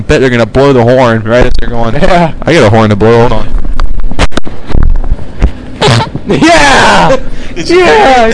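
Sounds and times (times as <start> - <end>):
speech: 0.1 - 3.6, 6.3 - 8.3
short low raspy fart: 4.1 - 6.3
excited voices reacting: 5.8 - 8.3.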